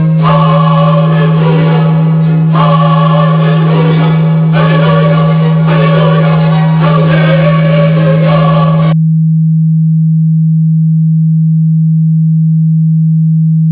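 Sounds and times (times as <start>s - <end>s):
humming: 0.0s - 13.7s.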